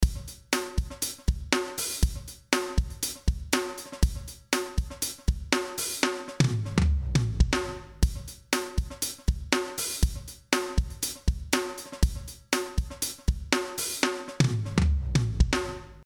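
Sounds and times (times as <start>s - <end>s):
drum sequence: 0.0s - 16.0s.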